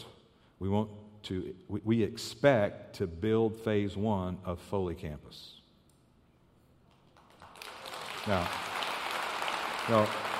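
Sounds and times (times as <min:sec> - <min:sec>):
speech: 0:00.6 - 0:05.6, 0:08.2 - 0:08.7, 0:09.9 - 0:10.3
church audience applause: 0:07.2 - 0:10.3.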